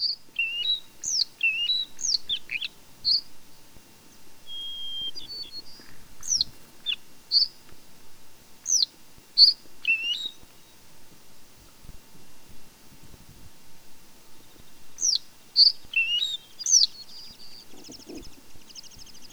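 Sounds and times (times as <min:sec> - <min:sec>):
bluethroat singing, mimicking an American golden plover call: 0:00.0 - 0:07.6, 0:08.6 - 0:10.8, 0:15.0 - 0:19.3.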